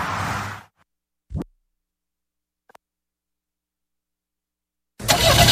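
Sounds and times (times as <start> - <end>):
car engine cranking and turning over: 5.0 - 5.5.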